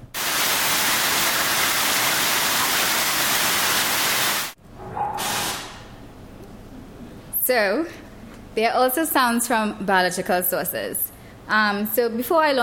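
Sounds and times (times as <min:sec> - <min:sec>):
recorded rain hiss: 0:00.2 - 0:04.6
speech: 0:07.5 - 0:08.0, 0:08.6 - 0:12.6.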